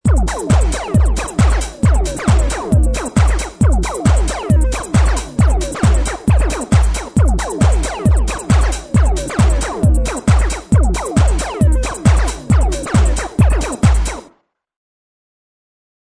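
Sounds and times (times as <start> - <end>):
trance music groove: 0.0 - 14.3.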